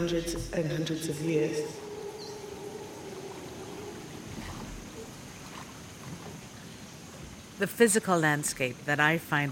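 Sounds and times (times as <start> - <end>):
speech: 0.0 - 1.9, 7.6 - 9.5
swamp water lapping against a dugout canoe poled through swamplands of Botswana: 1.8 - 7.6.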